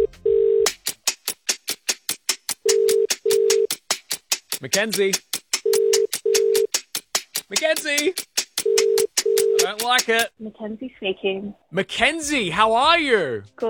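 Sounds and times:
phone ringing tone in double pulses through the line: 0:00.0 - 0:00.7, 0:02.6 - 0:03.7, 0:05.6 - 0:06.7, 0:08.6 - 0:09.8
rapid ticking beat: 0:00.7 - 0:10.3
speech: 0:04.6 - 0:05.3, 0:07.5 - 0:08.3, 0:09.6 - 0:13.6.

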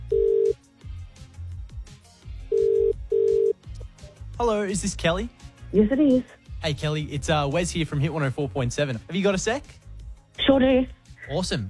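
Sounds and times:
telephone ringback tone of a dialed number: 0:00.1 - 0:00.6, 0:02.5 - 0:03.6
speech: 0:04.4 - 0:09.8, 0:10.5 - 0:11.6.

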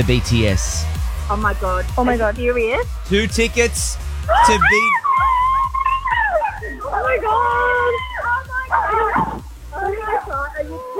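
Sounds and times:
speech: 0:00.0 - 0:05.3
excited voices talking: 0:00.0 - 0:10.9
dog barking and yipping in high-pitched bursts: 0:04.3 - 0:10.9.

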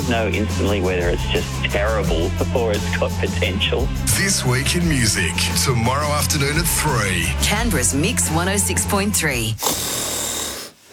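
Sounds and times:
speech: 0:00.1 - 0:10.1
person snoring: 0:09.6 - 0:10.9.

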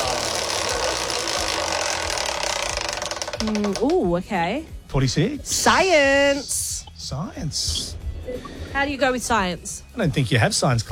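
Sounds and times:
prize wheel ratcheting during a big spin: 0:00.0 - 0:03.8
speech: 0:03.4 - 0:10.9.

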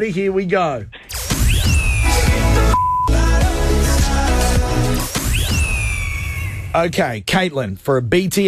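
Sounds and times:
speech: 0:00.0 - 0:01.8, 0:06.8 - 0:08.4
loud upbeat pop song with sweeping synth sounds: 0:01.4 - 0:06.3
censor beep bleeping out a word: 0:02.7 - 0:03.2.

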